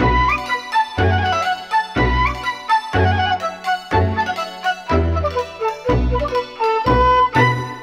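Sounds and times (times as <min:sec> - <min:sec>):
phonk flute loops: 0:00.0 - 0:07.8.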